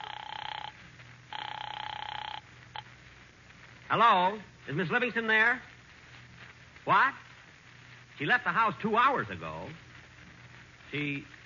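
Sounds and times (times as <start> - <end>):
telephone ringing with trilling bursts: 0.0 - 2.9
speech: 3.9 - 5.7, 6.9 - 7.3, 8.2 - 9.8, 10.9 - 11.4.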